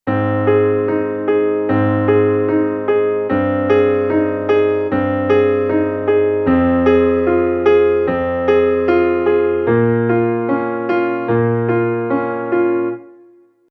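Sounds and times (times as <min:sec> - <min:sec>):
arpeggiated ballad in binary rhythm: 0:00.1 - 0:13.4.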